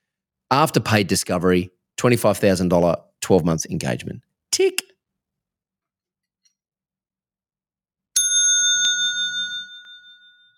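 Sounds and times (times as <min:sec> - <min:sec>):
speech: 0:00.5 - 0:04.8
bright bicycle-style bell ringing: 0:08.2 - 0:10.5.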